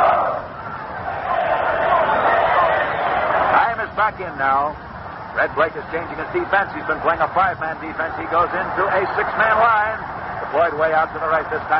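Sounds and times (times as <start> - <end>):
large stadium crowd chanting a team cheer: 0.0 - 3.6
speech: 4.2 - 11.7.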